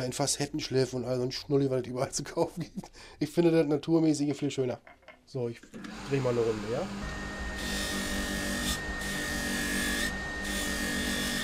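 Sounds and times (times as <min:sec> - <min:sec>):
speech: 0:00.0 - 0:07.2
small grinding machine sanding crust off amber: 0:05.7 - 0:11.4.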